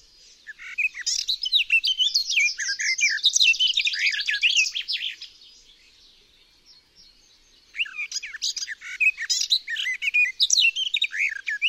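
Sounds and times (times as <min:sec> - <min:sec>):
garden warbler song: 0:00.0 - 0:11.6.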